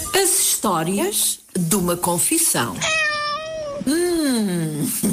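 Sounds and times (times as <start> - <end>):
speech: 0.2 - 3.1, 3.9 - 5.0
cat meowing: 2.8 - 3.9.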